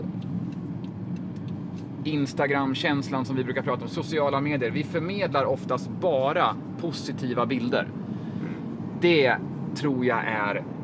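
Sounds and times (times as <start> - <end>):
car engine drone: 0.0 - 10.8
road noise: 0.0 - 10.8
speech: 2.0 - 8.0, 9.0 - 10.7.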